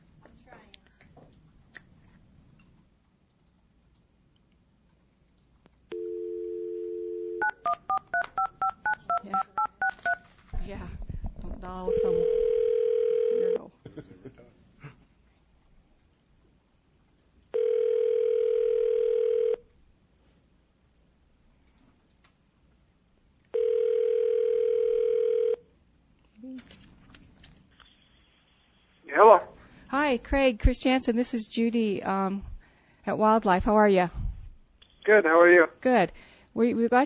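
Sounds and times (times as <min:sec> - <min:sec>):
telephone dial tone: 0:05.9 - 0:09.2, 0:12.0 - 0:13.6, 0:17.5 - 0:19.6, 0:23.5 - 0:25.6
telephone keypad beeps: 0:06.8 - 0:10.2
speech: 0:30.2 - 0:32.5, 0:33.1 - 0:34.2, 0:35.1 - 0:37.0.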